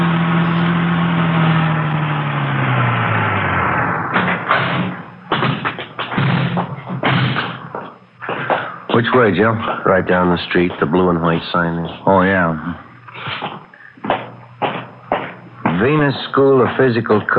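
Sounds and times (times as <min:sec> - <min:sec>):
car engine drone: 0:00.0 - 0:17.3
knocks and thuds: 0:04.1 - 0:08.7, 0:13.3 - 0:16.9
speech: 0:09.2 - 0:12.8, 0:15.8 - 0:17.3.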